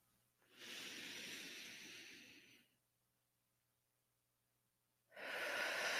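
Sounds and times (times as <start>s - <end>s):
deep inhaling breath during a guided breathing exercise: 0.5s - 2.8s, 5.1s - 5.9s.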